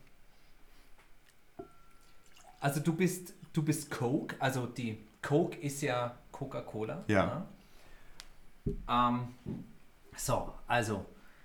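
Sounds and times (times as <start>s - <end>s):
small clink or drip in glass: 1.6s - 2.6s
whiskey poured into an empty glass: 1.6s - 2.9s
speech: 2.6s - 7.6s, 8.7s - 11.2s.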